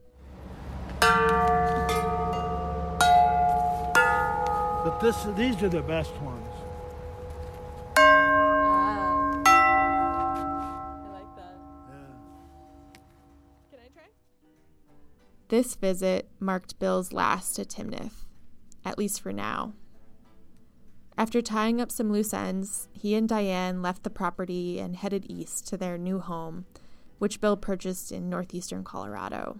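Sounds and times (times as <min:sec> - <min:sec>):
welded metal wind chimes struck and clanging: 0:01.0 - 0:12.9
speech: 0:05.0 - 0:06.6, 0:15.5 - 0:18.2, 0:18.8 - 0:19.8, 0:21.2 - 0:29.5.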